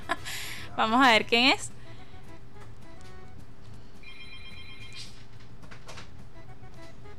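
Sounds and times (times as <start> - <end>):
steady low hum: 0.0 - 7.1
speech: 0.8 - 1.8
telephone ringing with a trilling electronic ring for a live call-in: 4.0 - 5.2.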